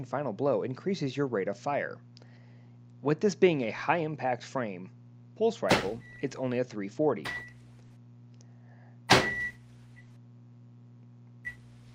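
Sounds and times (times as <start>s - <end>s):
speech: 0.0s - 2.2s, 3.0s - 7.5s
microwave oven humming: 0.0s - 11.9s
loud clunk of microwave door or timer: 5.7s - 6.2s, 9.1s - 9.6s
short electronic microwave beeps: 9.2s - 9.6s.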